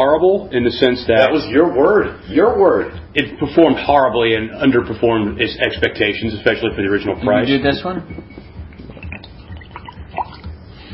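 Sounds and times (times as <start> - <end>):
speech: 0.0 - 8.4
vodka pouring into glasses: 8.7 - 10.6.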